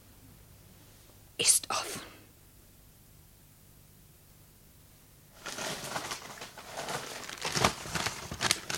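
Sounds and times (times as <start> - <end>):
speech: 1.4 - 2.0
stack of grey paper envelopes rustling and crinkling as handled: 5.4 - 8.7.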